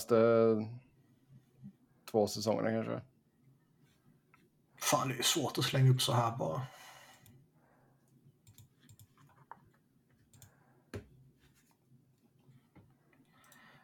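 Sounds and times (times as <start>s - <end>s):
speech: 0.0s - 0.9s, 2.1s - 3.1s, 4.8s - 6.8s
computer clicks while browsing hockey websites: 8.1s - 10.6s
computer keyboard taps while browsing hockey websites: 8.4s - 10.5s.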